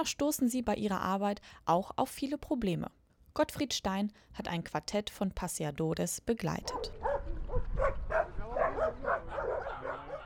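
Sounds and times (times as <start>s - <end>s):
speech: 0.0s - 7.1s
dozens of leashed dogs barking and yipping at a street intersection in Recoleta Buenos Aires: 6.7s - 10.2s.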